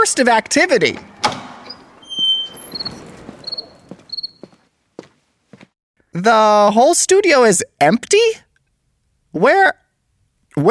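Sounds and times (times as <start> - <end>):
speech: 0.0 - 1.1, 6.2 - 8.4, 9.3 - 9.8
knocks and footsteps: 0.8 - 5.8
studio door opening with latch clicks and creak: 1.0 - 4.6.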